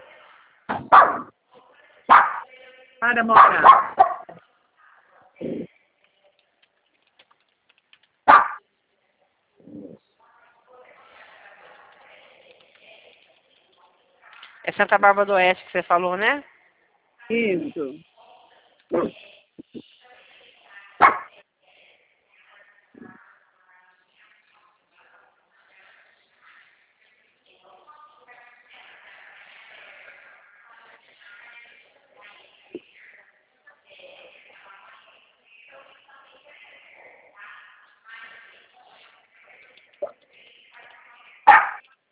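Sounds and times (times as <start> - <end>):
female dog barking: 0.7 - 1.3, 2.1 - 2.5, 3.3 - 4.4, 8.3 - 8.6, 21.0 - 21.4, 41.5 - 41.8
speech: 3.0 - 4.0, 14.8 - 16.5, 17.3 - 18.1, 18.9 - 19.2.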